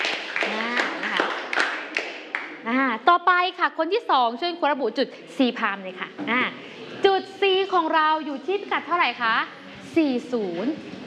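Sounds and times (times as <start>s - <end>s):
class clapping for a student's correct answer in a maths lesson: 0.0s - 2.6s
speech: 2.8s - 11.0s.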